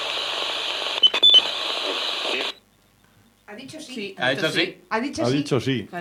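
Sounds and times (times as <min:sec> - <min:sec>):
radio static hiss triggered by an electromagnetic field sensor: 0:00.0 - 0:04.7
speech: 0:03.6 - 0:05.9.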